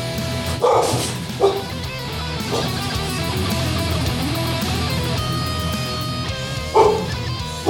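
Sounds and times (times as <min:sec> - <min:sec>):
steady dense music: 0:00.0 - 0:07.6
dog barking in a song: 0:00.5 - 0:01.8, 0:02.4 - 0:02.9, 0:06.6 - 0:07.6.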